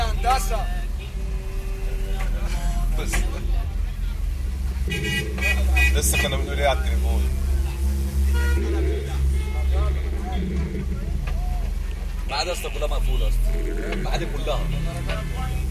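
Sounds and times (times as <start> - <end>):
car horns honking: 0.0 - 3.5, 4.7 - 11.0
indistinct voices talking: 0.0 - 15.6
street traffic rumble heard from inside a taxi: 0.0 - 15.6
taxi engine drone: 0.0 - 15.6.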